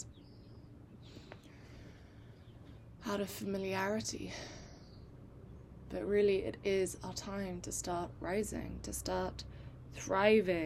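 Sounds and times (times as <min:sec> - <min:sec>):
birds chirping outdoors: 0:00.0 - 0:07.5
soft steady hum: 0:00.0 - 0:10.6
speech: 0:03.0 - 0:04.6, 0:05.9 - 0:10.6.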